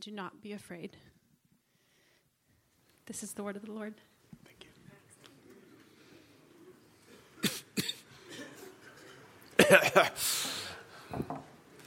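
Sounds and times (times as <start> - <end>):
speech: 0.0 - 1.2, 3.1 - 4.1, 9.7 - 11.5
audience members coughing and throat noises: 7.0 - 10.9.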